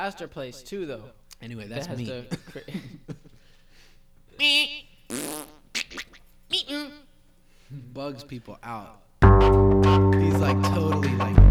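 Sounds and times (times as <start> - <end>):
speech: 0.0 - 3.2, 4.4 - 5.5, 6.5 - 7.0, 7.7 - 11.4
voice imitating fart sounds: 5.1 - 6.2.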